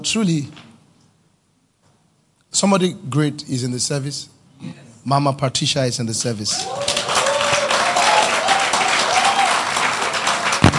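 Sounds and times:
speech: 0.0 - 0.7, 2.6 - 7.1
large audience clapping at a church service: 6.6 - 10.7.

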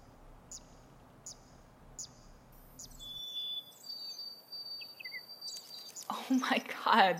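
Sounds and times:
steady low outdoor hiss: 0.0 - 7.1
dark-eyed junco chip notes: 0.5 - 6.1
speech: 6.1 - 7.1.

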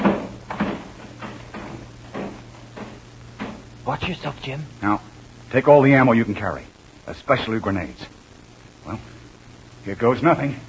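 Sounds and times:
back door being opened with soft knocking and rattling bumps: 0.0 - 3.6
speech: 3.9 - 8.2, 8.8 - 9.1, 9.8 - 10.6.

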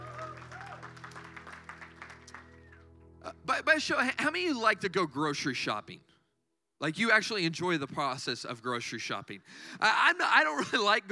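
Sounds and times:
audience applauding in a large room: 0.0 - 3.0
speech: 3.5 - 6.1, 6.8 - 11.0.

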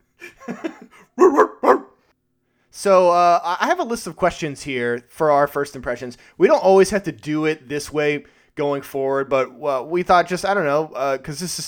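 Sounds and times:
laughter: 0.2 - 1.4
dog barking outside: 1.2 - 2.0
speech: 2.8 - 11.6.

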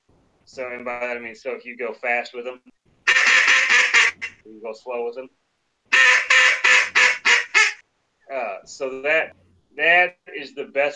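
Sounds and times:
speech: 0.5 - 2.8, 4.4 - 5.4, 8.4 - 10.9
raspy duck quacks made with a duck call: 3.1 - 4.4, 5.9 - 7.8.

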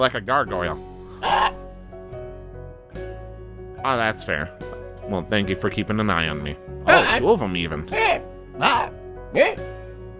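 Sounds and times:
speech: 0.0 - 1.6, 3.8 - 9.8
raven cawing: 1.0 - 1.8.

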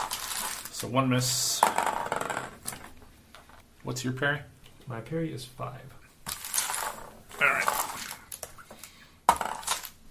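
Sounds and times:
handful of dice clattering onto a table: 0.0 - 0.8, 1.5 - 3.6, 6.2 - 10.0
speech: 0.8 - 2.3, 3.8 - 6.0.

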